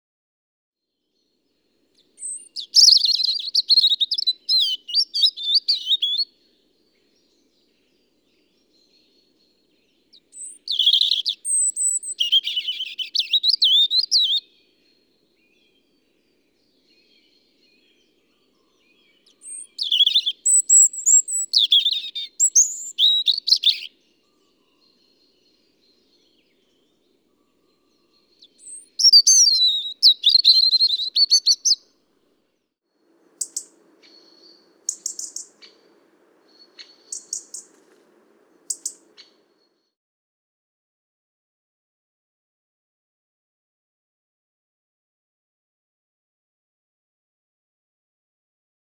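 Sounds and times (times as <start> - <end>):
European robin singing: 2.0 - 32.0, 33.1 - 39.8.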